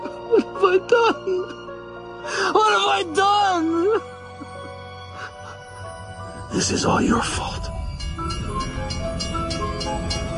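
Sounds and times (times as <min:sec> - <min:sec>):
speech: 0:00.6 - 0:01.6, 0:02.2 - 0:04.2, 0:06.5 - 0:09.3
approaching train rumbling on tracks: 0:05.7 - 0:10.3.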